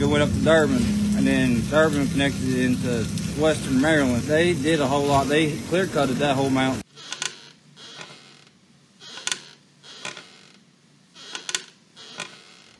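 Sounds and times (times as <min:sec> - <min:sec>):
speech: 0:00.0 - 0:06.8
wooden rocking chair creaking on a front porch: 0:06.8 - 0:12.7.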